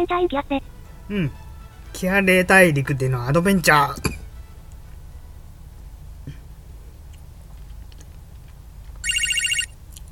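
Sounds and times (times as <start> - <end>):
speech: 0.0 - 4.1
electronic telephone ringing in a video game: 9.0 - 9.8.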